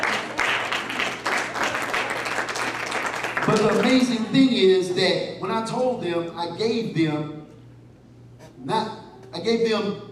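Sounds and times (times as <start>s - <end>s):
audience applauding in a large room: 0.0s - 4.2s
speech: 3.5s - 7.4s, 8.6s - 10.0s.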